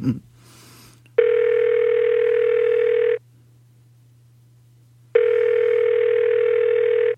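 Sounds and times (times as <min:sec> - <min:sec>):
faint low hum: 0:00.0 - 0:07.1
telephone ringback tone from a call on a touchscreen phone: 0:01.2 - 0:03.2, 0:05.2 - 0:07.1.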